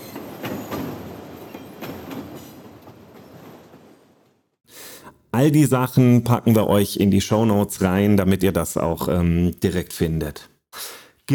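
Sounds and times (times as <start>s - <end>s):
train rumbling along the rails with clickety-clack: 0.0s - 4.4s
speech: 5.4s - 10.5s.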